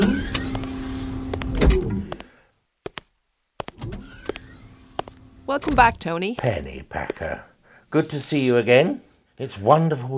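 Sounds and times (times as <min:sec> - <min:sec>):
motorized spacecraft portal door opening with a mechanical whir: 0:00.0 - 0:02.0, 0:03.8 - 0:05.3
speech: 0:05.5 - 0:10.1.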